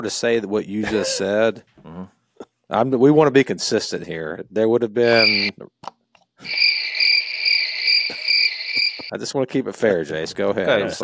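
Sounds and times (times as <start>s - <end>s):
speech: 0.0s - 6.8s, 9.1s - 11.0s
high-pitched cricket chirping trill: 5.1s - 5.5s, 6.5s - 9.1s.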